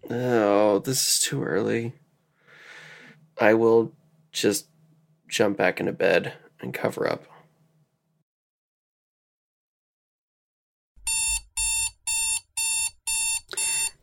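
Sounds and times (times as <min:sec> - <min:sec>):
speech: 0:00.1 - 0:02.0, 0:03.4 - 0:04.7, 0:05.3 - 0:07.3
alarm clock sounding sharp electronic bursts: 0:11.1 - 0:14.0.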